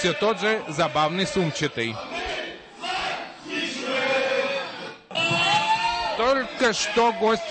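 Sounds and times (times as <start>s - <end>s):
speech: 0.0s - 2.2s, 6.3s - 7.4s
football fans singing club anthem in stadium: 0.0s - 5.7s.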